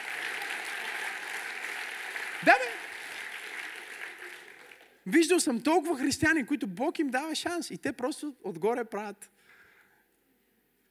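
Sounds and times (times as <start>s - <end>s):
audience clapping: 0.0s - 5.5s
speech: 2.4s - 2.7s, 5.1s - 9.4s.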